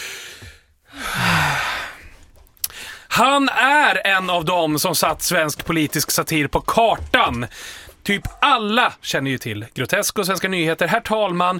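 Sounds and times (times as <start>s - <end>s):
person drawing a long deep breath: 0.0s - 3.1s, 7.5s - 8.0s
speech: 3.2s - 11.5s.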